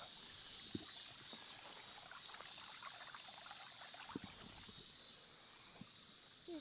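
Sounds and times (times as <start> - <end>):
mountain stream flowing on Sado Island, Niigata Prefecture, Japan: 0.0 - 5.9
cicadas droning: 0.0 - 6.5
soft splashes and knocks: 0.6 - 4.9.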